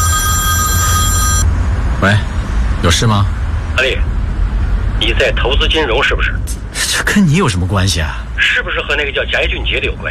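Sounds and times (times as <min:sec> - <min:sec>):
telephone ringing with a bright electronic tone: 0:00.0 - 0:01.5
speech: 0:02.0 - 0:04.1, 0:05.0 - 0:10.0.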